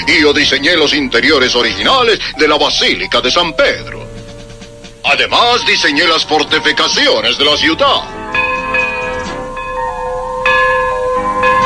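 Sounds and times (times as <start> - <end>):
speech: 0.0 - 4.1, 5.0 - 8.2
tower bell striking the hour: 3.4 - 11.6.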